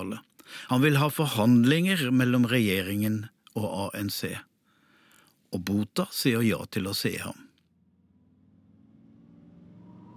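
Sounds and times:
speech: 0.0s - 4.5s, 5.5s - 7.4s
black car engine humming driving into underground parking: 7.7s - 10.1s.

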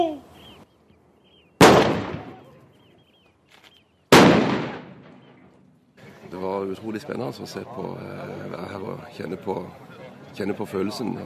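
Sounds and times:
cannon shots booming at a fortress in a battle reenactment: 1.6s - 2.5s, 4.1s - 5.5s
speech: 6.6s - 11.2s.

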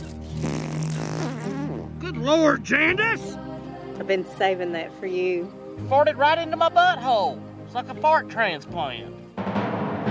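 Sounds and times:
long buzzing fart from a film clip: 0.2s - 2.1s
speech: 2.3s - 3.4s, 4.0s - 9.2s.

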